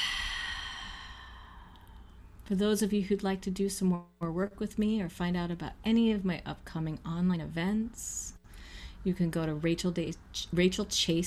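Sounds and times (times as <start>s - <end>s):
deep slow inhale and exhale during a breathing exercise: 0.0s - 2.2s
speech: 2.5s - 8.4s, 9.0s - 11.2s.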